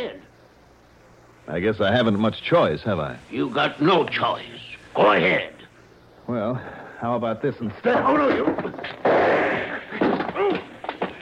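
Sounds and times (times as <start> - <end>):
speech: 1.5 - 5.6, 6.3 - 9.1
gunshot knocking a gun out of someone's hand: 8.4 - 10.6.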